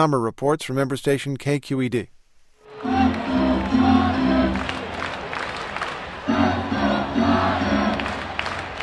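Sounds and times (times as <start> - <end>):
speech: 0.0 - 2.2
large baseball stadium crowd roaring and cheering: 2.7 - 8.8.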